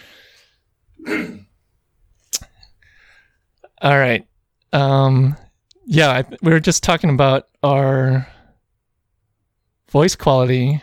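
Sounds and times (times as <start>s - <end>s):
short raspy throat clearing: 1.0s - 1.5s
speech: 3.8s - 8.4s, 9.9s - 10.8s.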